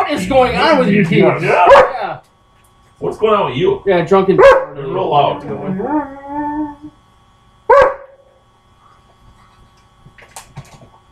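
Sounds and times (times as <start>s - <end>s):
speech: 0.1s - 2.3s, 3.0s - 6.2s
dog howling and whimpering: 5.5s - 7.0s.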